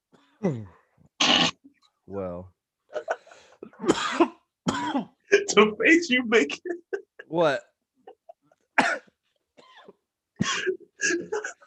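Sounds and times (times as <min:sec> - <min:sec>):
speech: 0:00.4 - 0:00.8, 0:02.1 - 0:02.6, 0:05.6 - 0:07.7
short sharp cough and rough throaty coughing: 0:03.6 - 0:05.6, 0:08.8 - 0:11.6.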